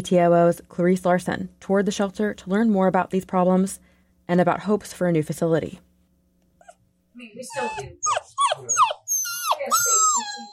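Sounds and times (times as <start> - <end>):
speech: 0.0 - 5.9, 7.2 - 8.8
litter of puppies whimpering and yipping at an animal rescue shelter in Juneau: 7.4 - 10.5.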